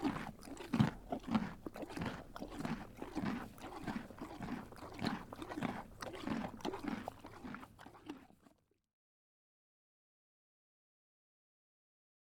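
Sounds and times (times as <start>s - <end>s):
Canadian horse eating carrots: 0.0s - 8.7s.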